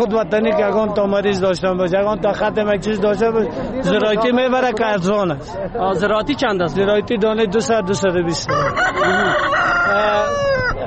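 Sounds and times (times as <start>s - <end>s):
speech: 0.0s - 10.5s
rooster crowing at a chicken market: 8.5s - 10.8s.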